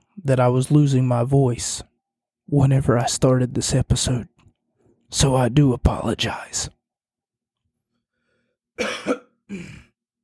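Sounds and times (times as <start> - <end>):
speech: 0.2 - 1.9, 2.5 - 4.3, 5.1 - 6.8, 8.8 - 9.8
coughing: 8.8 - 10.0.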